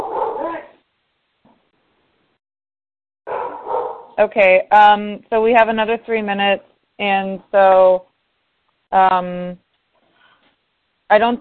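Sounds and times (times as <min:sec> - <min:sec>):
dog barking during a call: 0:00.0 - 0:00.7, 0:03.3 - 0:04.2
speech: 0:04.2 - 0:08.1, 0:08.9 - 0:09.6, 0:11.1 - 0:11.3.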